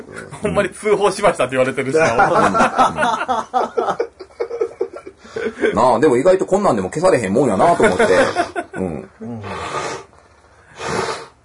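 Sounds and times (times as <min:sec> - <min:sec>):
speech: 0:00.4 - 0:04.1, 0:05.4 - 0:08.6
laughter: 0:01.9 - 0:05.8, 0:07.6 - 0:09.1
forceful nose blows: 0:08.2 - 0:11.4.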